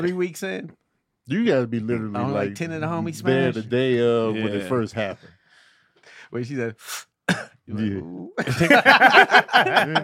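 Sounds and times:
speech: 0:00.0 - 0:05.4, 0:06.3 - 0:10.0
person coughing: 0:07.3 - 0:07.6
laughter: 0:08.4 - 0:10.0.

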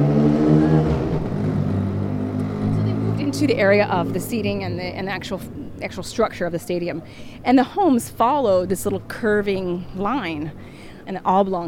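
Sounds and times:
motorcycle engine revving: 0:00.0 - 0:05.1
speech: 0:03.4 - 0:11.6.

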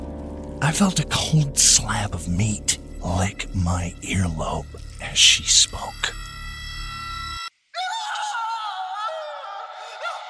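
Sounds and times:
speech: 0:00.6 - 0:06.2
droning tone: 0:01.6 - 0:07.5
shrill scream: 0:06.2 - 0:10.2.

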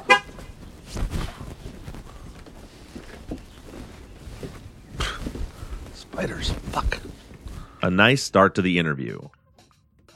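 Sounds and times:
rental car horn honk: 0:00.0 - 0:00.4
soft footsteps: 0:00.0 - 0:07.8
quiet outdoor ambience: 0:00.0 - 0:10.1
speech: 0:06.2 - 0:07.0, 0:07.8 - 0:09.4.

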